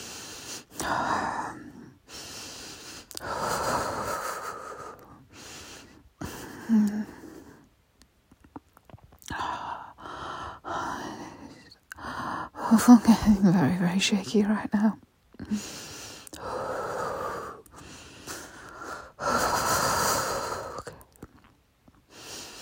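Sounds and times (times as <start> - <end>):
slow deep human breathing: 0.0 - 7.7, 9.2 - 12.7, 15.4 - 21.0, 22.0 - 22.6
speech: 12.8 - 15.8.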